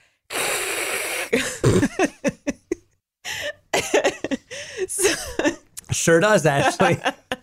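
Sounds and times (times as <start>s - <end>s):
person making a breathy hissing sound imitating white noise: 0.3s - 1.8s
speech: 1.3s - 2.4s, 6.0s - 7.2s
short bursts of laughter: 1.4s - 3.0s, 3.7s - 5.7s, 6.5s - 7.4s.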